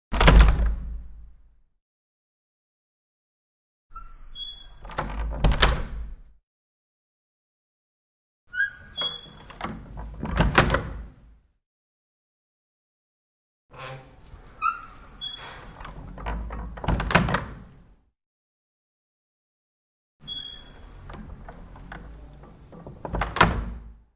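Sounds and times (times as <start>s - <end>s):
small wooden door closing: 0.1s - 1.1s, 4.0s - 6.3s, 8.6s - 11.4s, 13.8s - 17.9s, 20.2s - 24.1s.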